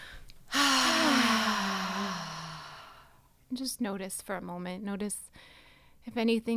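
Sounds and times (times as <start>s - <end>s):
single deep breath inhale with breathy sigh: 0.0s - 3.2s
speech: 3.6s - 6.5s.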